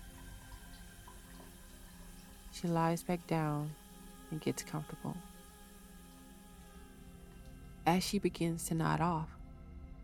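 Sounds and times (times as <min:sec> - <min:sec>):
shower running: 0:00.0 - 0:07.7
speech: 0:02.6 - 0:05.3, 0:07.9 - 0:09.4.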